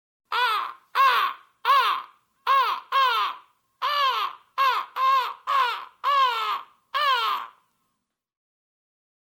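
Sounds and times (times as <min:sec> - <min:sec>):
crow cawing: 0:00.3 - 0:07.6.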